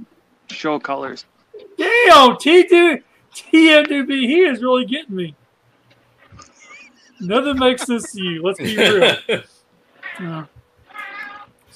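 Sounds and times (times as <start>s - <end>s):
speech: 0.6s - 1.3s, 2.0s - 5.4s, 7.2s - 9.5s, 10.2s - 10.5s
laughter: 6.4s - 9.4s
cat meowing: 10.0s - 11.6s.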